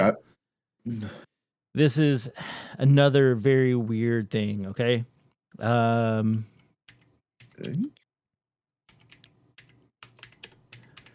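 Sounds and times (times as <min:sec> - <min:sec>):
speech: 0:00.1 - 0:06.5, 0:07.6 - 0:08.0
quick irregular clicking of computer keys: 0:06.9 - 0:07.7, 0:08.9 - 0:11.1.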